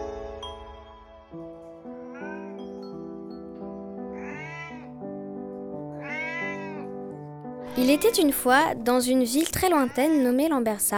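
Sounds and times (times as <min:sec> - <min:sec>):
cat meowing: 0:02.0 - 0:02.7, 0:04.0 - 0:05.0, 0:05.9 - 0:06.9, 0:09.4 - 0:10.3
speech: 0:07.8 - 0:10.9.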